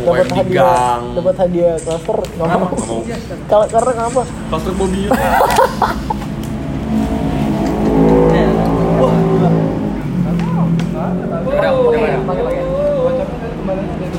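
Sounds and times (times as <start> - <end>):
speech: 0.0 - 6.1
car engine revving: 4.3 - 14.1
laughter: 4.8 - 6.6.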